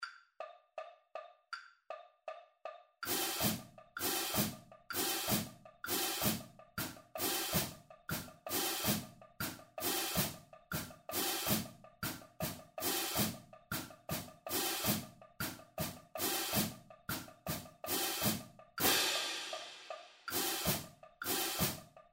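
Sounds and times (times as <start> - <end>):
cymbal accent taps: 0.0 - 22.0.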